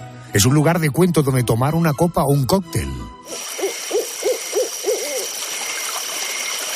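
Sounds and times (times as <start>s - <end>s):
speech: 0.3s - 3.4s
hiss of crickets or flowing water in a forest-themed bar: 3.3s - 6.7s
owl hooting in a forest-themed bar: 3.3s - 6.7s.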